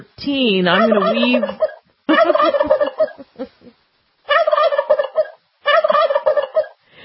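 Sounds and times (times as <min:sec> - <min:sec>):
speech: 0:00.0 - 0:02.7
turkey gobbling: 0:00.7 - 0:03.2, 0:04.3 - 0:06.8.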